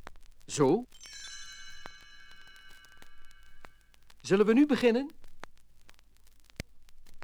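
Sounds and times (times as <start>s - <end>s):
speech: 0.5s - 1.0s, 4.3s - 5.2s
small bells tinkling: 0.5s - 5.0s.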